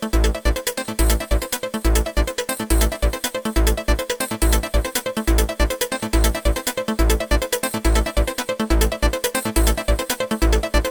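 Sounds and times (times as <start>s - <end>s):
Korg Wavestation SR synthesizer drum sounds: 0.1s - 10.8s.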